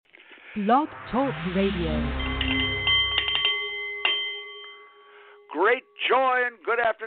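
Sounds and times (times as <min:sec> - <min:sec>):
speech: 0:00.5 - 0:02.3, 0:05.6 - 0:07.0
Nepalese metal meditation bowl chiming: 0:01.3 - 0:06.0.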